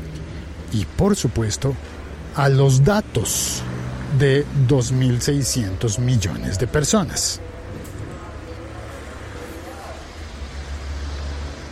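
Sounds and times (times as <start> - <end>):
road noise: 0.0 - 11.7
scrap collector's truck engine drone on a street: 0.0 - 11.7
speech: 0.7 - 7.5
faint voices murmuring: 5.3 - 10.4.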